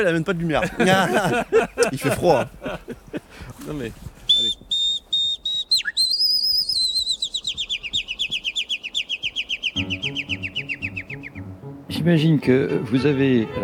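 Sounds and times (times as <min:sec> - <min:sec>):
laughter: 0:00.0 - 0:03.4
speech: 0:00.0 - 0:04.5, 0:12.0 - 0:13.6
person whistling an imitation of nightingale song: 0:04.3 - 0:11.6.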